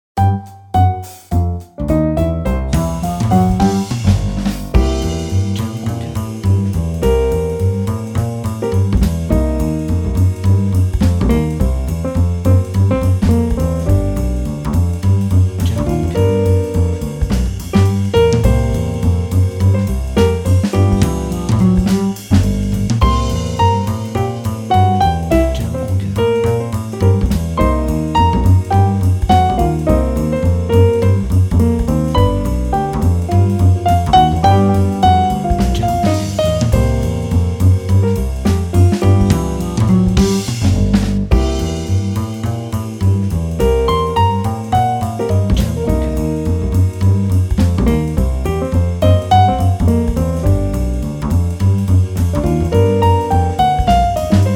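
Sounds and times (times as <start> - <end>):
positive happy jazz music: 0.0 - 54.5.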